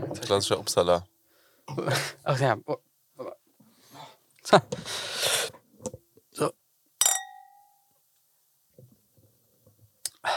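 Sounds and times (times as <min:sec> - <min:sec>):
speech: 0:00.2 - 0:01.1, 0:01.7 - 0:02.9, 0:04.4 - 0:05.3, 0:06.4 - 0:06.6
glasses clinking in a toast: 0:07.0 - 0:07.8.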